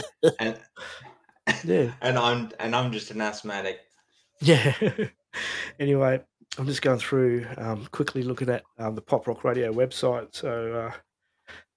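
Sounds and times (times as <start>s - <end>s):
laughter: 0.0s - 0.4s, 4.4s - 5.1s
speech: 0.2s - 11.6s
rough throaty coughs: 1.5s - 1.9s.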